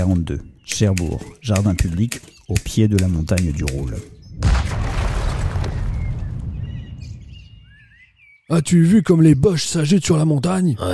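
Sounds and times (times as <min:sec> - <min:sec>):
speech: 0:00.0 - 0:04.2, 0:08.5 - 0:10.9
faint birdsong: 0:00.0 - 0:04.4, 0:05.0 - 0:10.9
dynamite blast in rock tunnel: 0:04.4 - 0:07.4.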